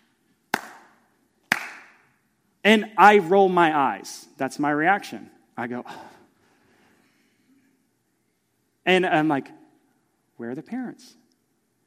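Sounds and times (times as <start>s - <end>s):
sharp hand claps by a child walking in an aisle: 0.5s - 2.1s
speech: 2.6s - 6.1s, 8.8s - 9.6s, 10.4s - 11.2s.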